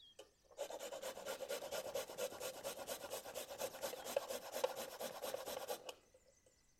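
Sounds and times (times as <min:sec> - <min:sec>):
garlic clove grated against a fine rasp into tomatoes: 0:00.6 - 0:05.9.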